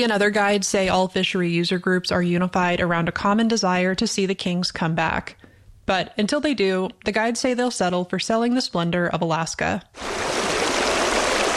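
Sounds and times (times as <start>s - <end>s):
speech: 0.0s - 10.3s
river water rushing: 10.0s - 11.5s.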